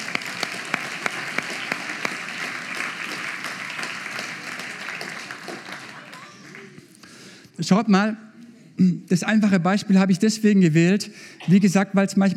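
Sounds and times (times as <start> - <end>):
audience applause for a participant: 0.0 - 7.0
speech: 7.6 - 8.2, 8.8 - 12.3.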